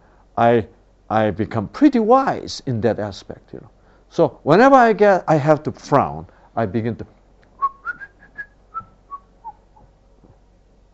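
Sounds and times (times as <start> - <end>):
speech: 0.4 - 7.2
person whistling a short soft tune: 7.6 - 9.6.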